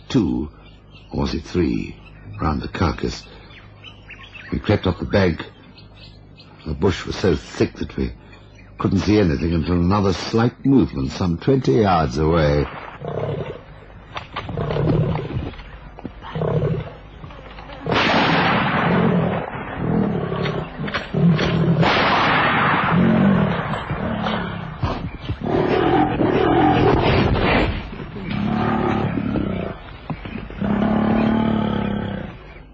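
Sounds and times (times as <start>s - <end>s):
speech: 0.1s - 3.4s, 4.5s - 8.2s, 8.8s - 13.3s
lion growling and roaring in thick bush by a riverbed: 12.9s - 13.7s, 14.4s - 15.6s, 16.2s - 17.0s, 18.7s - 22.0s, 22.6s - 32.6s.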